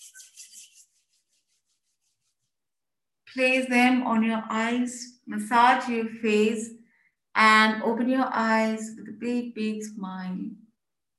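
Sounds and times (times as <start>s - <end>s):
palms rubbing together briskly: 0.0s - 2.8s
speech: 3.3s - 6.8s, 7.4s - 10.6s.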